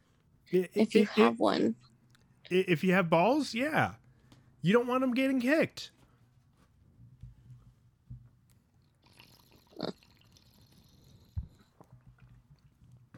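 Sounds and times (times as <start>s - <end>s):
speech: 0.5s - 1.9s, 2.5s - 4.0s, 4.6s - 6.0s
splashy swallows of water: 9.0s - 12.5s
person sipping water during a break: 9.0s - 12.7s.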